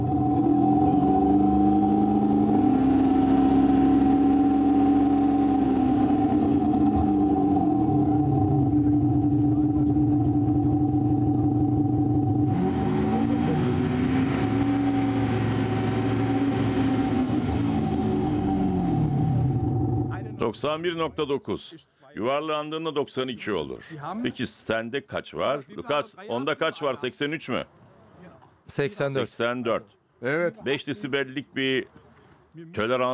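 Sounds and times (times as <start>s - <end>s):
car engine idling and revving with noise unsuppressed: 0.0s - 20.4s
speech: 20.6s - 27.8s, 28.7s - 33.1s.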